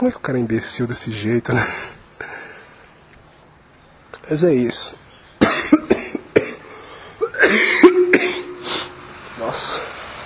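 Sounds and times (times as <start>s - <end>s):
speech: 0.0s - 2.0s, 4.3s - 5.8s, 7.4s - 8.4s, 9.4s - 10.0s
violent coughing fit: 5.4s - 9.0s.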